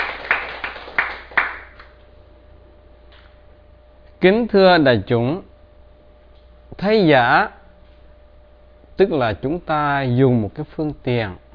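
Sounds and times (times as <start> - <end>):
scattered audience clapping in a reverberant room: 0.0 - 2.0
speech: 4.2 - 5.5, 6.7 - 7.6, 9.0 - 11.4.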